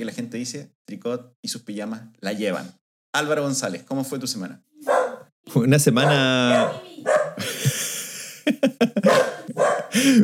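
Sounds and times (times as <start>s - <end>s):
speech: 0.0s - 7.8s, 8.5s - 10.2s
dog in a house barking at a window: 4.8s - 5.3s, 6.0s - 7.4s, 9.0s - 10.0s
laughter: 7.4s - 10.2s.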